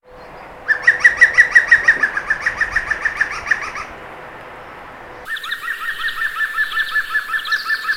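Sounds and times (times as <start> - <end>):
European green woodpecker laughing call: 0.0 - 7.9.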